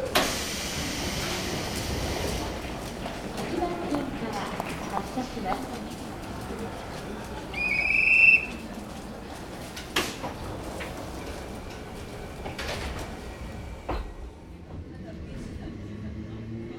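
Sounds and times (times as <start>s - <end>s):
faint voices: 0.0s - 16.7s
train pulling into a station: 0.0s - 16.7s.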